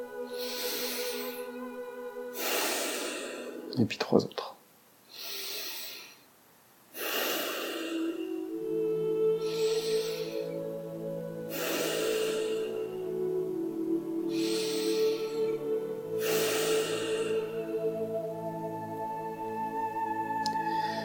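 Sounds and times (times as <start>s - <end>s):
slow deep breathing during a breathing exercise: 0.0s - 3.7s, 5.0s - 6.3s, 6.9s - 13.3s, 14.2s - 18.6s, 20.4s - 21.0s
soft sustained tone: 0.0s - 3.8s, 7.2s - 21.0s
speech: 3.8s - 4.5s.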